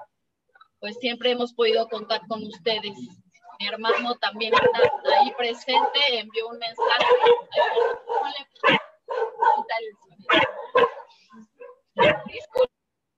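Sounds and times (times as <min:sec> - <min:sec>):
speech: 0:00.8 - 0:08.8
dogs barking: 0:03.4 - 0:12.5.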